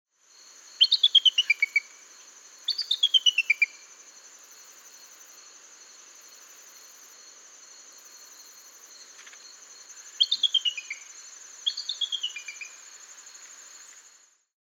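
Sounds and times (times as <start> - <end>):
Blue Jay Cyanocitta cristata: 0.8 - 2.0, 2.6 - 3.8, 10.2 - 12.8.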